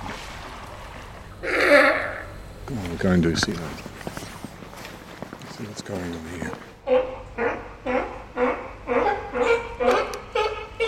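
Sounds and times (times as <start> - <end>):
speech: 3.0 - 3.9, 5.8 - 6.7
harsh barking alarm calls of an animal related to ducks and geese: 6.8 - 10.8.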